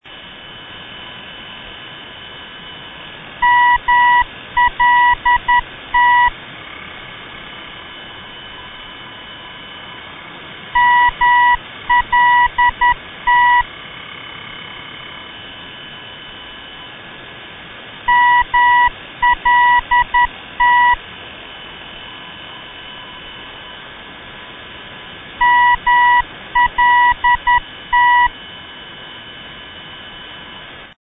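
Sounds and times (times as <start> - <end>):
NDB radio beacon signal in Malta: 3.4 - 6.4, 10.8 - 13.7, 18.1 - 21.0, 25.4 - 28.4.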